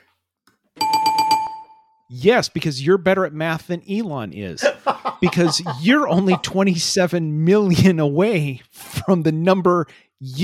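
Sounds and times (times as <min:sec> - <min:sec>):
bell ringing with rapid pulsing trill: 0:00.8 - 0:02.0
speech: 0:02.1 - 0:10.4
laughter: 0:04.6 - 0:06.7.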